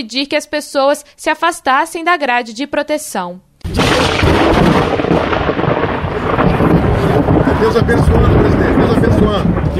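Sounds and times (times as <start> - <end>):
speech: 0.0 - 5.0, 7.6 - 9.7
heavy downpour roar: 3.7 - 9.7
rumbling thunder: 3.7 - 9.7.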